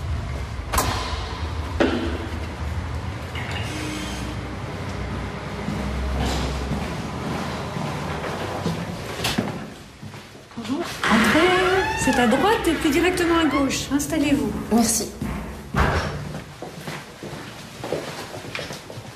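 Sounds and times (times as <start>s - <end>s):
steady room noise: 0.0s - 19.1s
door scraping creak as it swings: 11.0s - 14.1s
speech: 12.1s - 15.2s.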